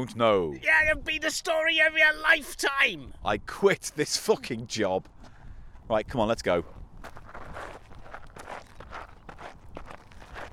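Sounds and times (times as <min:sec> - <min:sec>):
speech: 0:00.0 - 0:05.2, 0:05.9 - 0:07.2
person tapping or stomping to imitate walking footsteps: 0:06.7 - 0:10.5.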